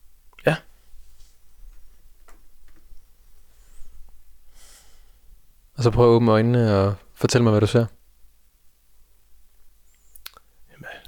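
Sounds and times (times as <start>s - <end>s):
speech: 0.4s - 0.6s, 5.8s - 8.0s
soft airy deep breaths: 0.7s - 2.2s, 3.0s - 5.5s, 9.7s - 11.0s.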